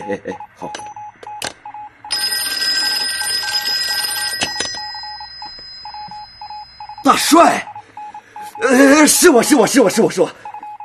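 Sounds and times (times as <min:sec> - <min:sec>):
speech: 0:00.0 - 0:00.9, 0:07.2 - 0:07.7, 0:08.6 - 0:10.4
short repeating tones: 0:00.0 - 0:10.8
telephone ringing with jangling bell tones: 0:02.1 - 0:07.8.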